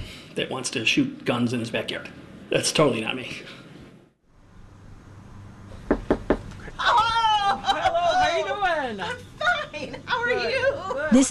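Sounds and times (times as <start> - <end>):
speech: 0.4 - 3.6, 8.8 - 11.2
knocking on a front door in Orland Park during campaign door-knocking: 5.8 - 6.5
laughter: 6.8 - 11.1.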